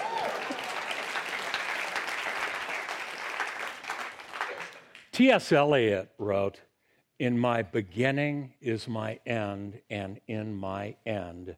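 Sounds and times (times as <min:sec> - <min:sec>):
applause from a sizable audience: 0:00.0 - 0:05.1
speech: 0:05.2 - 0:11.5.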